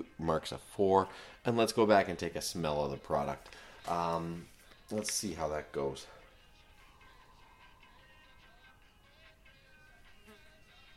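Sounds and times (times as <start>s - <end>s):
speech: 0.2s - 6.2s
fly buzzing: 6.6s - 10.9s.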